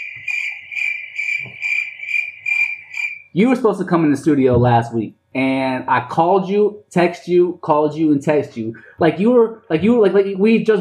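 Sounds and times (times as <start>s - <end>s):
crickets chirping sound effect: 0.0s - 3.4s
speech: 3.4s - 10.7s
faint low thump: 4.5s - 4.8s.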